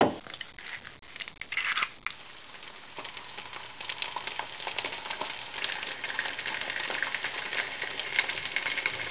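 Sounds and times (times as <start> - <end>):
egg frying: 0.2 - 9.0.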